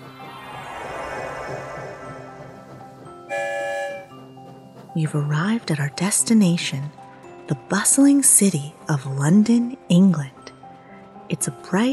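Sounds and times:
train coming out of a tunnel rumbling: 0:00.0 - 0:11.9
train whistle: 0:03.3 - 0:04.2
speech: 0:05.0 - 0:10.4, 0:11.3 - 0:11.9.

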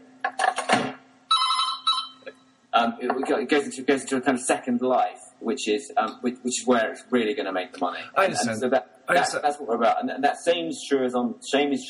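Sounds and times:
faint steady hum: 0:00.0 - 0:11.8
telephone ringing with melodic electronic ringtone: 0:01.3 - 0:02.4
speech: 0:02.8 - 0:11.8.

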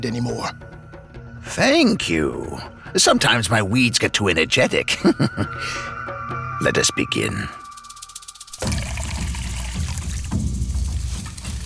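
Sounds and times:
speech: 0:00.0 - 0:00.7, 0:01.4 - 0:06.0, 0:06.6 - 0:07.6
water sloshing and trickling as evergreen leaves are dropped into a bowl: 0:08.6 - 0:11.6.

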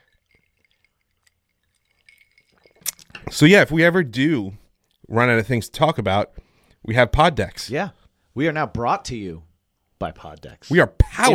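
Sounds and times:
faint liquid sloshing in glasses: 0:00.0 - 0:03.3
glasses clinking in a toast: 0:00.0 - 0:03.5
speech: 0:03.3 - 0:11.3.

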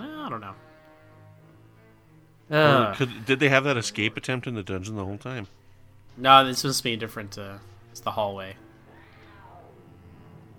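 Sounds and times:
speech: 0:00.4 - 0:00.7, 0:02.5 - 0:05.6, 0:06.2 - 0:08.6
cat meowing: 0:08.9 - 0:09.8.

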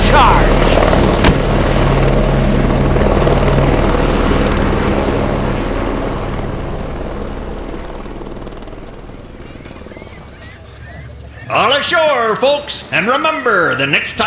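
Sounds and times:
helicopter rotor thumping while taking off: 0:00.0 - 0:10.3
helicopter engine whine: 0:00.0 - 0:14.2
speech: 0:11.9 - 0:14.2.

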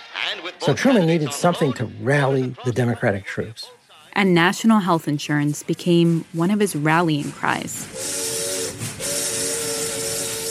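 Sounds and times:
laughter: 0:00.0 - 0:03.6
speech: 0:00.3 - 0:08.2
steam train whistle of a campaign train pulling out of Washington: 0:07.8 - 0:10.5.

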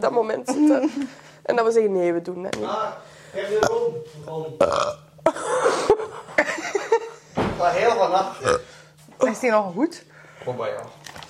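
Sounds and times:
speech: 0:00.0 - 0:05.7, 0:07.6 - 0:11.0
loud croaking burps: 0:04.6 - 0:05.3, 0:08.3 - 0:08.8
laughter: 0:05.2 - 0:07.3.

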